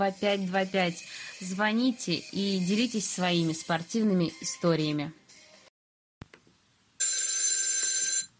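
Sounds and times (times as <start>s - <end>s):
speech: 0.0s - 5.2s
studio telephone ringing with electronic trill: 7.0s - 8.3s.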